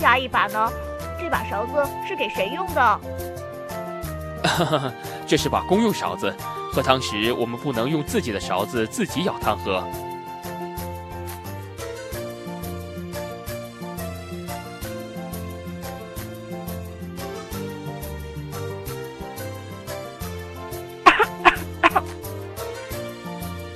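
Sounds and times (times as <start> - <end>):
speech: 0.0 - 3.2, 4.5 - 10.0
soft music during a meal: 0.0 - 23.7
laughter: 4.5 - 5.0
child coughing away from the dinner table: 21.1 - 22.1.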